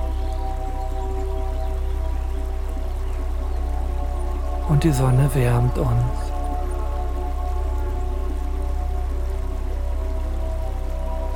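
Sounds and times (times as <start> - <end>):
gently splashing flowing river water: 0.0 - 11.3
speech: 4.7 - 6.3.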